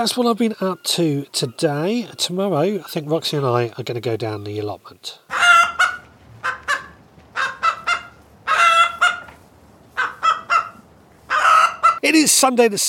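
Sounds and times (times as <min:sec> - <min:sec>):
speech: 0:00.0 - 0:05.6, 0:12.0 - 0:12.8
chickens clucking and squawking: 0:05.3 - 0:12.0.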